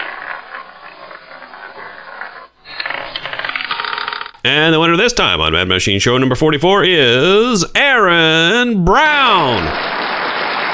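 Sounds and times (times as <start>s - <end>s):
spinning roulette wheel clicking: 0.0s - 4.4s
speech: 4.4s - 9.9s.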